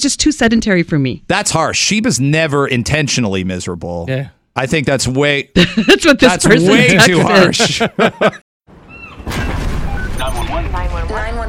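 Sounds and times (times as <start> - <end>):
speech: 0.0 - 8.4
laughter: 5.6 - 8.5
explosion on a cruise ship: 9.2 - 11.4.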